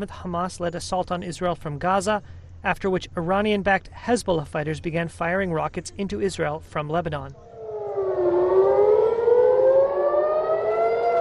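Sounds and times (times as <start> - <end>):
speech: 0.0 - 7.5
air raid siren wailing: 7.4 - 11.1.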